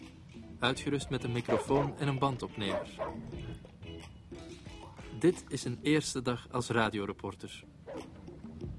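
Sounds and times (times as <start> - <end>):
speech: 0.6 - 3.7, 5.2 - 7.7
dog giving sharp yappy barks: 1.4 - 2.0, 2.7 - 3.2.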